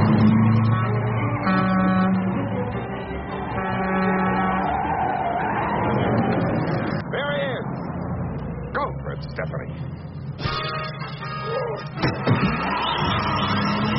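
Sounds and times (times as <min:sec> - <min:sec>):
car engine whining while braking and reversing on a one-way street: 0:00.0 - 0:13.9.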